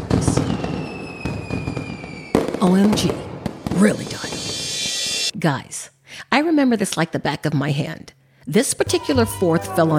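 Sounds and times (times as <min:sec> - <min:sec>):
Fourth of July fireworks exploding: 0:00.0 - 0:05.3
speech: 0:02.7 - 0:03.2, 0:03.8 - 0:04.4, 0:05.4 - 0:09.9.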